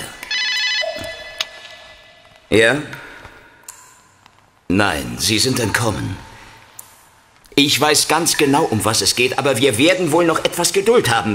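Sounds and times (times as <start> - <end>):
telephone ringing with a bright buzzy electronic tone: 0.3 - 2.1
speech: 2.5 - 3.0, 4.7 - 6.3, 7.6 - 11.3.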